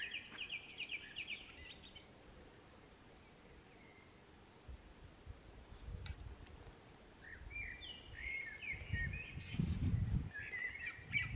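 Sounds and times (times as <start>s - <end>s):
Common blackbird singing fluty warbling song in a park: 0.0s - 2.2s, 3.2s - 4.2s, 6.7s - 11.3s.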